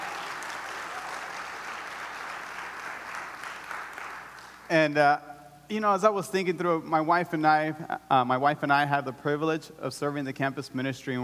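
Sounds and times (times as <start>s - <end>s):
audience applause: 0.0s - 4.7s
speech: 4.7s - 11.2s.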